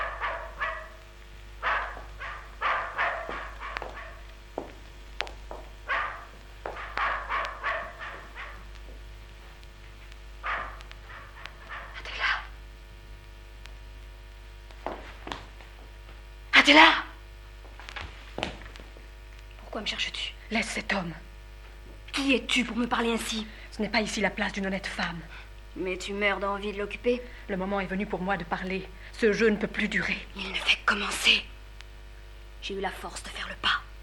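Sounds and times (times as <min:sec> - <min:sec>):
several dogs barking frantically: 0:00.0 - 0:01.0, 0:01.6 - 0:04.3, 0:05.8 - 0:08.7, 0:10.4 - 0:12.2
speech: 0:16.7 - 0:17.0, 0:19.8 - 0:21.3, 0:22.2 - 0:31.5, 0:32.6 - 0:33.7.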